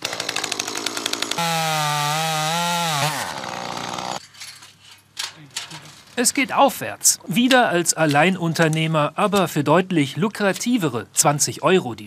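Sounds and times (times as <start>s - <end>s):
chainsaw sputtering and revving: 0.0s - 4.2s
speech: 6.2s - 12.0s.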